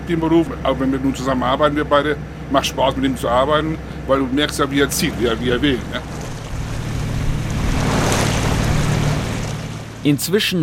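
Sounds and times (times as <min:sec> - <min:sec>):
low engine-like hum on a fishing cutter: 0:00.0 - 0:10.6
wind around a boat at sea: 0:00.0 - 0:10.6
speech: 0:00.1 - 0:06.2, 0:10.0 - 0:10.6
waves on the Baltic Sea rocking a fishing cutter: 0:03.8 - 0:10.6.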